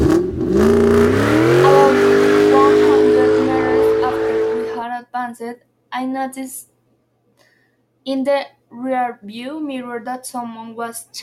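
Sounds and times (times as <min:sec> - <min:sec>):
car engine starting and revving: 0:00.0 - 0:04.8
speech: 0:05.5 - 0:06.7, 0:08.0 - 0:11.2.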